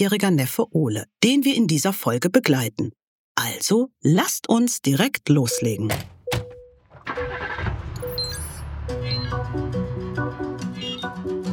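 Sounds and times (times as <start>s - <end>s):
speech: 0.0s - 6.5s
taxi engine starting and driving off: 6.8s - 10.4s.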